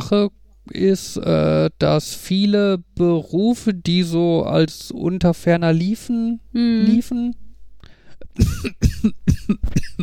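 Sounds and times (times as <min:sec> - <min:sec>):
speech: 0:00.1 - 0:07.4, 0:08.4 - 0:10.0
person coughing in a rough hacking fit: 0:08.2 - 0:10.0.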